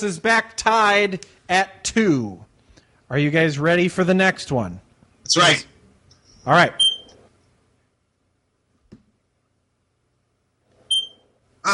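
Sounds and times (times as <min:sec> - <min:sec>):
speech: 0:00.0 - 0:02.5, 0:03.1 - 0:05.7, 0:06.4 - 0:06.9
smoke detector low-battery chirp: 0:06.8 - 0:07.2, 0:10.9 - 0:11.2.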